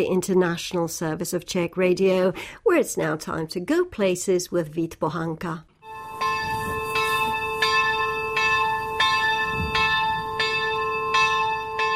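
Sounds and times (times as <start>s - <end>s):
speech: 0.0s - 5.7s
church bell tolling: 5.8s - 11.9s.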